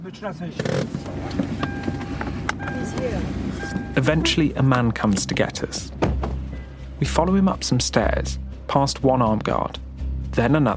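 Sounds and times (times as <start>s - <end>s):
speech: 0.0s - 2.0s, 2.6s - 6.0s, 7.0s - 9.8s, 10.4s - 10.7s
car engine droning at low pitch while driving into a military base: 0.0s - 8.7s
voices: 2.7s - 5.9s.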